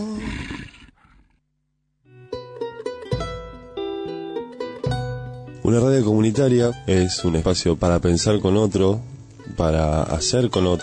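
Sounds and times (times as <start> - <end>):
deep rough wolf growl: 0.1 - 1.4
speech: 5.7 - 10.8.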